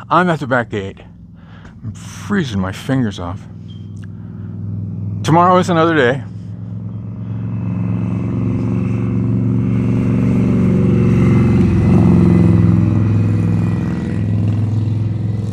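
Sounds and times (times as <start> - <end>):
speech: 0.1 - 1.1, 1.8 - 3.6, 5.3 - 6.3
motorcycle engine roaring past: 3.4 - 15.5.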